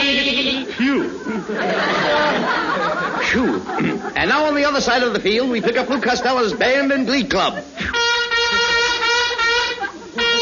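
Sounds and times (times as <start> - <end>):
voices bleating like nanny goats singing an alma mater: 0.0 - 0.8
crowd chatter at a football game: 0.0 - 10.4
laughter: 0.0 - 10.4
speech: 0.9 - 8.0.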